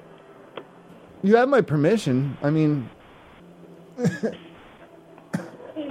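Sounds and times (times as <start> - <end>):
faint room noise: 0.0 - 5.8
speech: 1.2 - 3.0, 4.0 - 4.5
person coughing while vaping indoors: 4.0 - 4.4, 5.3 - 5.6.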